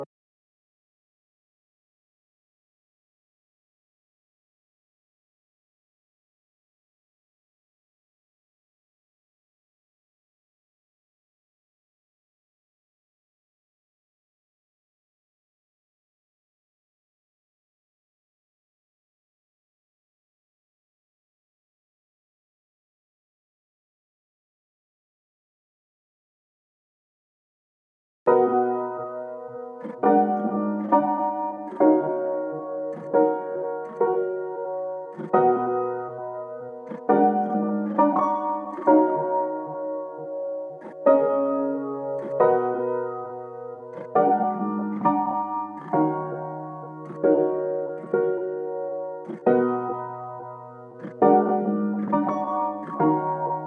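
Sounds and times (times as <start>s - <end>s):
piano piece in C sharp minor: 28.3s - 53.6s.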